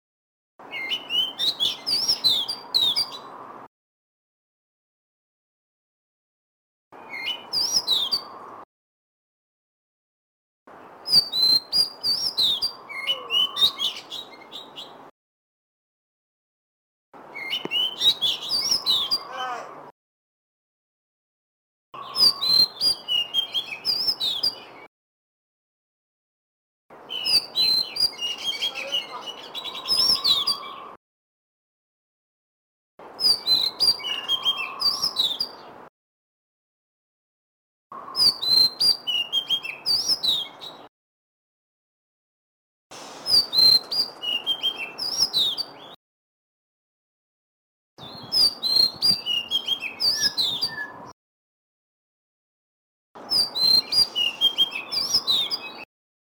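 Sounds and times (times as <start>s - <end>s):
kacer lutung cebu bird chirping: 0.6s - 3.4s, 7.0s - 8.6s, 10.8s - 15.1s, 17.2s - 19.7s, 22.0s - 24.9s, 27.0s - 31.0s, 33.1s - 35.8s, 38.0s - 40.9s, 43.2s - 46.0s, 48.0s - 51.2s, 53.2s - 55.9s.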